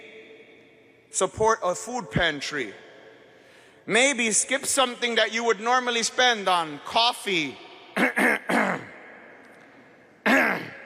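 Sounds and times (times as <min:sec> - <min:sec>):
speech: 0:01.2 - 0:02.8, 0:03.9 - 0:08.3
person clearing throat with something stuck in it: 0:08.0 - 0:09.0, 0:10.2 - 0:10.8.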